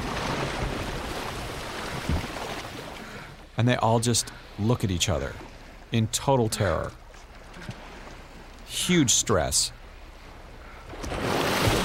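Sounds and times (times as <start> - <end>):
water sloshing around a boat filling with water: 0.0 - 11.8
dull low thump: 1.9 - 2.4
speech: 3.6 - 7.0, 8.7 - 9.8.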